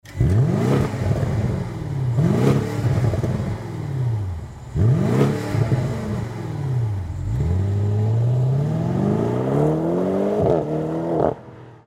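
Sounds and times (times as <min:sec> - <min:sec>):
BMW M550i G30 4,4l 340kW engine in Sport Mode: 0:00.0 - 0:11.8.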